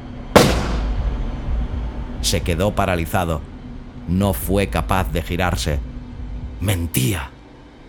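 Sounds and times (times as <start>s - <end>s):
low hum: 0.0s - 7.8s
single gunshot with rumbling tail: 0.4s - 1.2s
speech: 2.2s - 3.5s, 4.1s - 5.9s, 6.6s - 7.3s.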